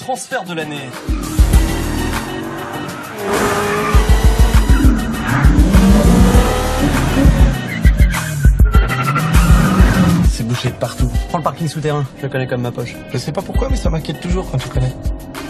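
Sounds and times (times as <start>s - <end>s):
speech: 0.1s - 3.8s, 10.5s - 15.2s
taxi engine throbbing: 1.0s - 10.4s
taxi tires squealing while braking hard and skidding: 1.1s - 10.3s.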